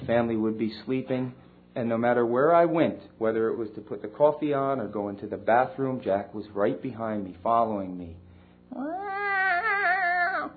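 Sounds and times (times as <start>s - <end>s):
speech: 0.1s - 9.0s
cat meowing loudly: 8.7s - 10.5s.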